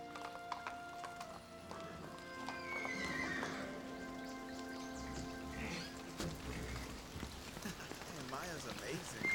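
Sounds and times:
horse hooves clip-clopping: 0:00.0 - 0:09.3
soft patter of rain: 0:00.0 - 0:09.3
horse whinny: 0:01.9 - 0:03.9, 0:05.0 - 0:07.1
speech: 0:08.4 - 0:09.3.

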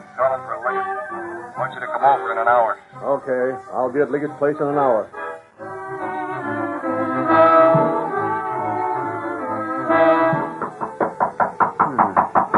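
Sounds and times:
speech: 0:00.2 - 0:05.2
dramatic sustained music: 0:05.2 - 0:12.5
firm knocks on a door: 0:10.3 - 0:12.5.

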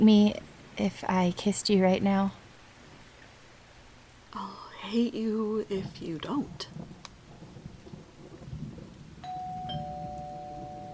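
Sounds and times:
speech: 0:00.0 - 0:02.4, 0:04.3 - 0:06.9
doorbell ringing a two-tone chime: 0:09.2 - 0:10.9.

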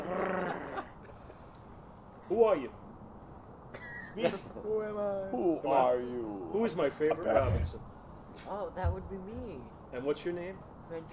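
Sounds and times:
dog growling for food: 0:00.0 - 0:01.0
speech: 0:02.3 - 0:02.8, 0:04.2 - 0:11.1.

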